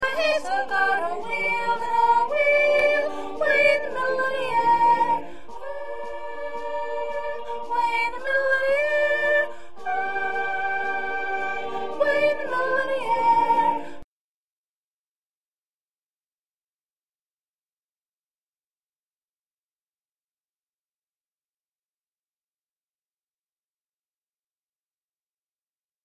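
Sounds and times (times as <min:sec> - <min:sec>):
first soprano section of choir singing: 0:00.0 - 0:14.0.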